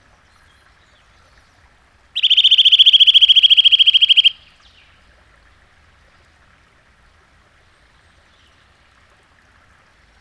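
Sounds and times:
Eurasian nuthatch rapid piping trill: 2.2 - 4.4.

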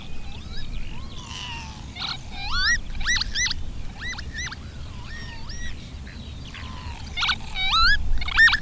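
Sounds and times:
Northern lapwing calls: 0.0 - 8.6.

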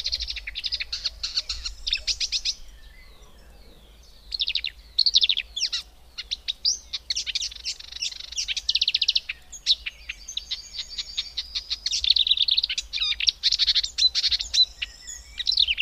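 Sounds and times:
marsh warbler song: 0.0 - 15.8.

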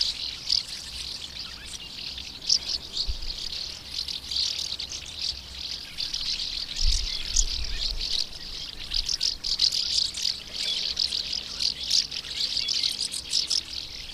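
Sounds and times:
common house martins chattering with rapid high chirps: 0.0 - 14.1.

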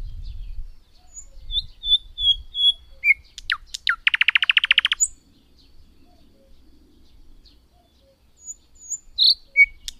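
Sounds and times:
thrush nightingale singing soft high whistles: 0.1 - 5.2, 7.7 - 9.9.

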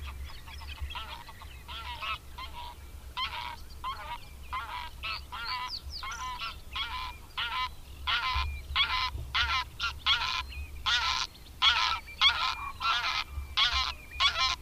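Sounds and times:
greylag goose calling: 0.7 - 14.6.

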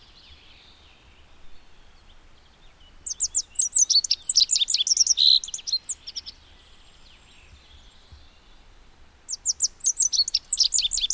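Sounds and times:
rock bunting singing: 1.4 - 8.5, 9.3 - 11.1.

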